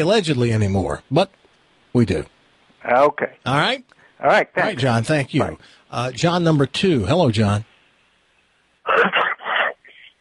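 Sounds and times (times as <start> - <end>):
speech: 0.0 - 7.7
caller sneezing over a phone-quality line: 8.9 - 10.1.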